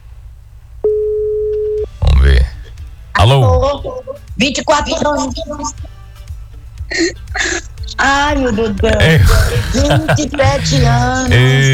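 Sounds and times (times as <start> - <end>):
telephone ringback tone while placing a call: 0.8 - 2.0
speech: 3.6 - 5.9, 6.9 - 11.7
laughter: 6.9 - 11.7.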